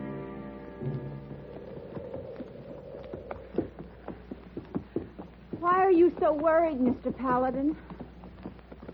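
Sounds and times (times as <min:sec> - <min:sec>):
horse hooves clip-clopping: 0:00.1 - 0:08.9
speech: 0:06.3 - 0:07.9.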